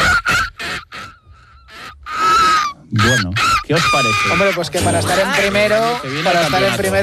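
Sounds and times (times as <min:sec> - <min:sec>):
person imitating an old seagull's raspy squawks: 0:00.0 - 0:07.0
speech: 0:02.9 - 0:07.0.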